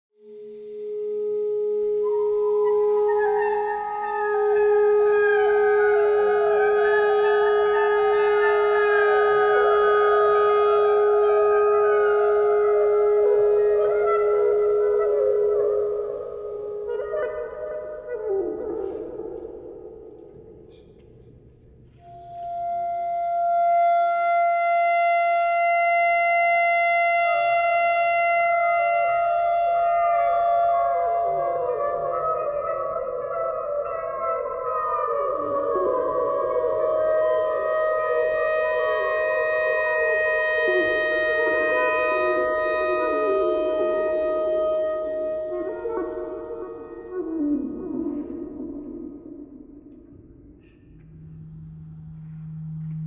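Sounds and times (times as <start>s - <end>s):
clarinet notes: 0.2s - 19.6s, 22.0s - 49.7s.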